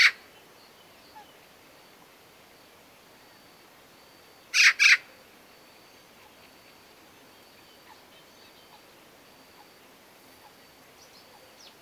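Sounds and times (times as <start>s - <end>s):
Eurasian magpie Pica pica grating call: 4.6s - 5.0s.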